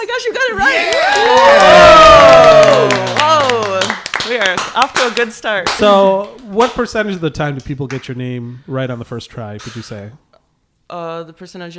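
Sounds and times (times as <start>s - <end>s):
speech: 0.0s - 1.7s, 4.4s - 10.2s, 10.9s - 11.7s
crowd cheering and whooping: 0.6s - 3.6s.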